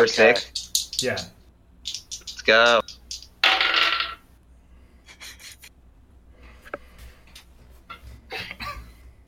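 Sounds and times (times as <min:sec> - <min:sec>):
speech: 0:00.0 - 0:01.4, 0:02.4 - 0:03.0
dice clattering across a hard table: 0:01.9 - 0:04.2.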